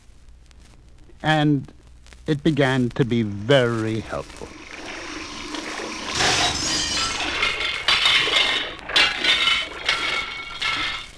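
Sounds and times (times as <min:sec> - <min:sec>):
speech: 0:01.2 - 0:04.6
running water in a sink: 0:03.1 - 0:11.1
dishes clinking and clattering in a sink: 0:04.5 - 0:11.1.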